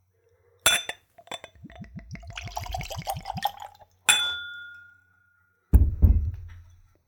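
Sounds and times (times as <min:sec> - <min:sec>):
neat spirit poured into a Glencairn whiskey nosing glass: 0:00.7 - 0:04.0
glass clink: 0:00.7 - 0:05.4
ringing glass chime: 0:02.6 - 0:05.5
knock: 0:05.8 - 0:06.8.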